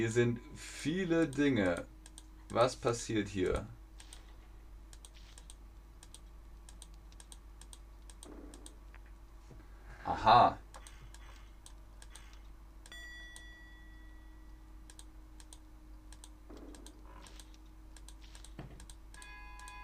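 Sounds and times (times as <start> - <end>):
speech: 0.0 - 1.9, 2.5 - 3.8, 10.1 - 10.6
low steady hum: 0.0 - 19.8
computer mouse clicking: 1.2 - 2.6, 4.0 - 4.3, 4.9 - 9.0, 10.7 - 13.0, 14.9 - 19.8.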